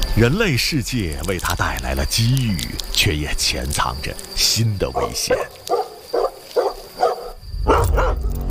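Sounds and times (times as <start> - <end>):
speech: 0.2 - 5.5
domestic dog barking: 4.9 - 8.3.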